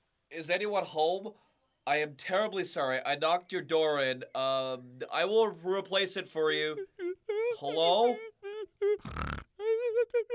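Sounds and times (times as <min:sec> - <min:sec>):
speech: 0:00.3 - 0:09.5, 0:10.1 - 0:10.3
voice imitating a little pig grunting: 0:07.5 - 0:09.6.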